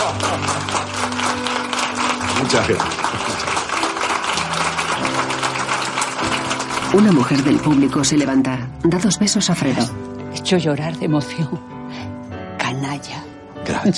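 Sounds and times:
loud applause from a large audience: 0.0 - 8.3
speech: 2.5 - 3.1, 6.9 - 11.7.

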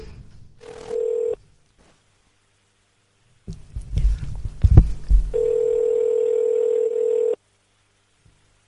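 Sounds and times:
telephone ringing tone: 0.7 - 1.4, 5.3 - 7.4.

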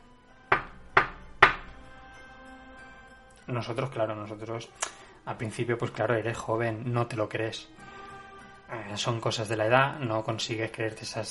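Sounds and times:
knocking on a door: 0.5 - 1.8
speech: 3.5 - 7.9, 8.7 - 11.2.

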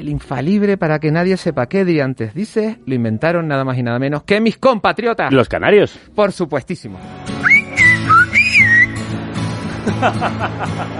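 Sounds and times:
speech: 0.0 - 7.6, 9.8 - 10.9
Silbo Gomero whistled language phrases from La Gomera in the Canary Islands: 7.4 - 9.0
laughter: 9.7 - 10.9.

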